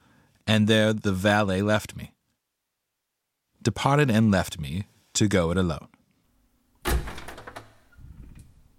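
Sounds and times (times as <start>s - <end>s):
speech: 0.5s - 2.2s, 3.6s - 6.0s
studio door opening with thud and rattling scraping sweep: 6.8s - 8.6s.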